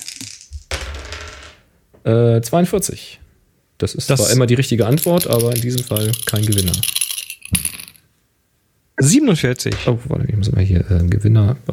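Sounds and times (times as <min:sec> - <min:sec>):
dice rolled for a prize draw: 0:00.0 - 0:01.6, 0:04.8 - 0:08.0
speech: 0:02.0 - 0:03.2, 0:03.8 - 0:07.6, 0:09.0 - 0:11.7.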